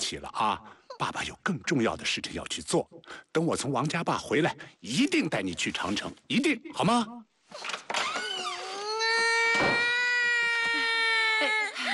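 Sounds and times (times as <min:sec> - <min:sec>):
speech: 0:00.1 - 0:07.8
child crying: 0:08.6 - 0:11.9.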